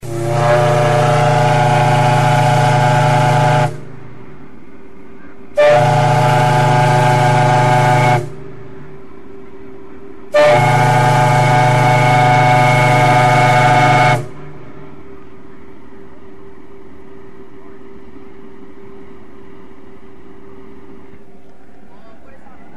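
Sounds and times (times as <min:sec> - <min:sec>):
steamer steam whistle: 0:00.0 - 0:04.0, 0:05.6 - 0:08.5, 0:10.3 - 0:14.5.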